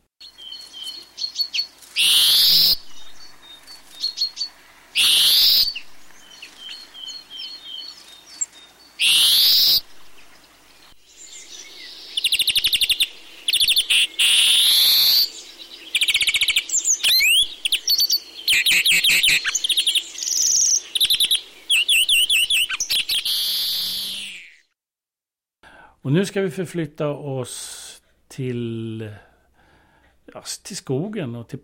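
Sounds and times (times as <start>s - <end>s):
yellowish finch related to the chaffinch calling: 0.2s - 24.6s
speech: 26.1s - 27.7s, 28.4s - 29.3s, 30.3s - 31.6s.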